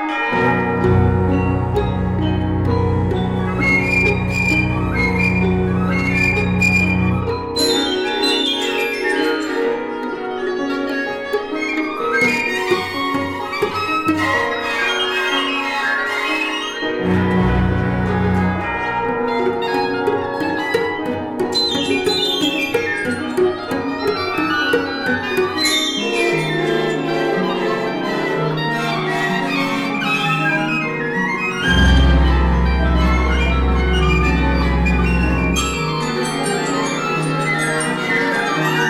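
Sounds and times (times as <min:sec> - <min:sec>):
cello playing variations: 0:00.1 - 0:38.8.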